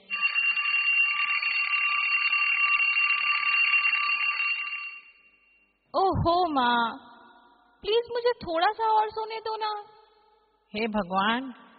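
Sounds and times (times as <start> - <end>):
alarm clock ringing: 0.0 - 5.4
speech: 6.2 - 7.1, 7.8 - 9.9, 10.7 - 11.6.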